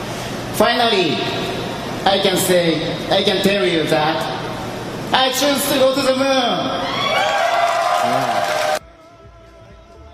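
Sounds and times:
speech: 0.6s - 4.4s, 5.1s - 7.3s
loud crowd screaming and cheering in welcome: 6.8s - 8.8s.

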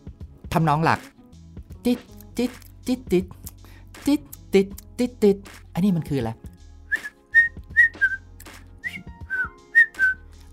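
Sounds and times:
speech: 0.5s - 1.2s, 1.8s - 3.4s, 4.0s - 6.5s
whistled jaunty melody: 6.8s - 10.5s.

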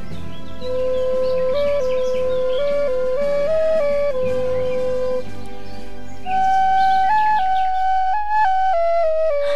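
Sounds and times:
Thai reed pipe playing a lilting melody: 0.0s - 9.5s.

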